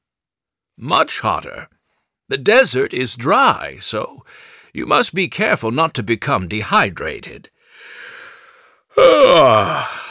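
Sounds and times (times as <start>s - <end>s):
speech: 0.8s - 8.0s, 9.0s - 10.0s
faint breathy intake: 7.6s - 10.0s
person yawning late at night: 8.9s - 10.0s.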